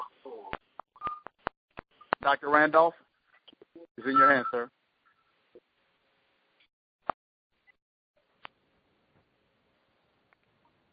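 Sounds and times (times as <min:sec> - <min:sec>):
telephone keypad DTMF beeps: 0:01.0 - 0:01.4
speech: 0:02.2 - 0:03.1, 0:04.0 - 0:04.8.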